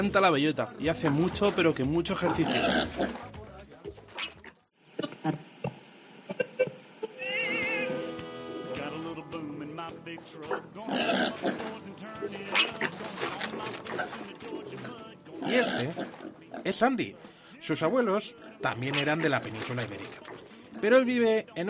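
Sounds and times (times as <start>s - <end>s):
speech: 0.0s - 3.4s, 5.2s - 5.5s, 16.7s - 21.6s
pig from the fields of Extremadura fed on acorns grunting and oinking: 2.2s - 3.3s, 10.5s - 16.8s, 18.8s - 20.9s
pig from the fields of Extremadura squealing: 2.2s - 3.3s, 4.0s - 5.4s, 7.0s - 8.2s, 10.5s - 16.8s, 18.8s - 20.9s.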